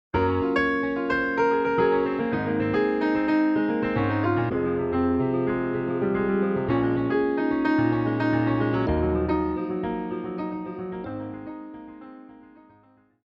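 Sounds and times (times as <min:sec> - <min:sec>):
piano advertising interlude: 0:00.2 - 0:13.2.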